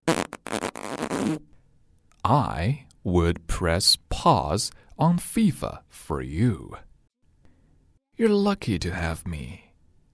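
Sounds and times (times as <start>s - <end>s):
flatulence: 0.0s - 1.5s
speech: 2.3s - 6.9s, 8.2s - 9.6s.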